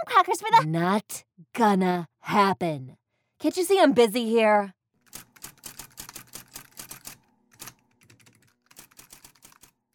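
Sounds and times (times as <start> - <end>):
speech: 0.2 - 4.8
fast typing on a computer keyboard: 5.0 - 9.9.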